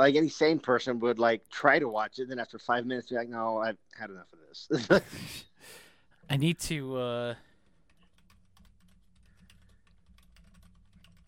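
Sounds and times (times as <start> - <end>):
speech: 0.0 - 7.5
typing on a computer keyboard: 7.6 - 11.2.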